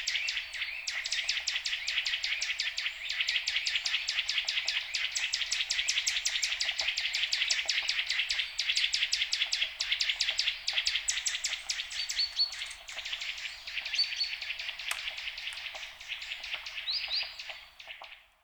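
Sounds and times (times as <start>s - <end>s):
Sitta europaea Eurasian nuthatch calling: 0.0s - 18.2s.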